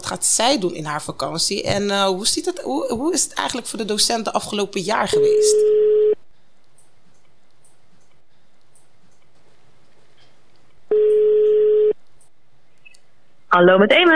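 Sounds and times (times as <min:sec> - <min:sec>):
speech: 0:00.1 - 0:06.0, 0:13.6 - 0:14.1
telephone ringing tone while calling a teacher: 0:05.2 - 0:06.2, 0:10.9 - 0:12.0.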